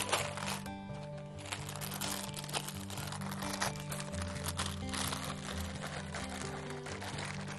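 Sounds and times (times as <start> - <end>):
baking paper peeled off sponge cake: 0.0 - 7.5
soft music: 0.0 - 7.5.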